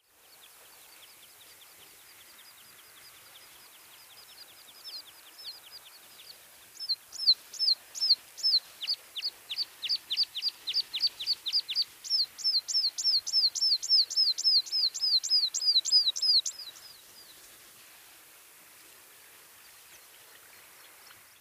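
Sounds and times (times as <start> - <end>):
American pipit calling: 6.8 - 16.9.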